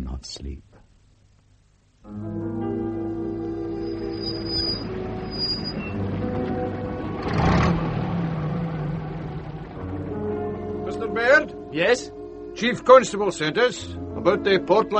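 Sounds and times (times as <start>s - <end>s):
speech: 0.2s - 0.7s, 2.0s - 2.5s, 11.8s - 14.9s
car engine starting and running: 2.8s - 11.2s.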